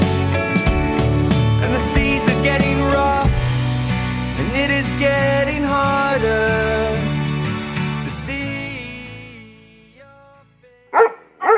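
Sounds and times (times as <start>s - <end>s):
musical passage: 0.0s - 8.8s
dog barking: 11.0s - 11.5s.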